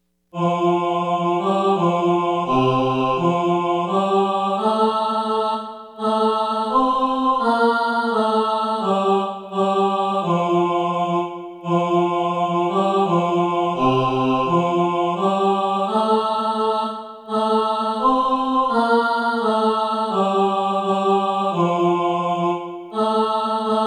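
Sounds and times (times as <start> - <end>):
SATB choir singing: 0.4 - 23.8.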